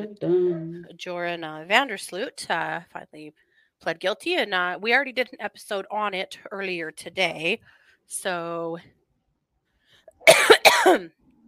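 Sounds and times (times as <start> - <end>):
speech: 0.0 - 9.0, 10.2 - 11.2
person coughing into a microphone: 10.2 - 11.1.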